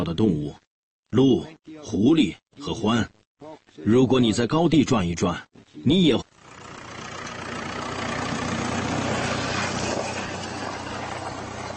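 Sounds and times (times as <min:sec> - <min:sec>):
speech: 0:00.0 - 0:06.6
tractor engine droning while ploughing a field: 0:06.4 - 0:11.7.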